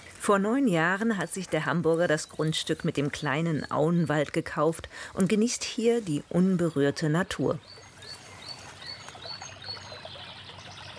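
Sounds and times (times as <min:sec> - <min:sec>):
gentle trickle of brook water: 0:00.0 - 0:10.9
speech: 0:00.2 - 0:07.8
faint bird chirps: 0:07.6 - 0:10.9.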